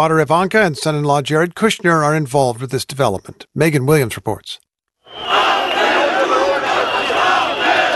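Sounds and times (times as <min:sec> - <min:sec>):
speech: 0:00.0 - 0:05.6
large street protest crowd chanting and shouting: 0:05.1 - 0:07.9.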